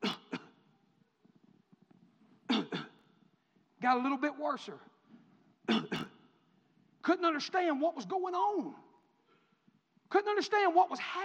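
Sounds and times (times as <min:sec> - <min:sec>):
person coughing harshly: 0:00.0 - 0:00.7, 0:02.5 - 0:03.1, 0:05.7 - 0:06.2
speech: 0:03.8 - 0:04.9, 0:07.1 - 0:08.8, 0:10.1 - 0:11.2.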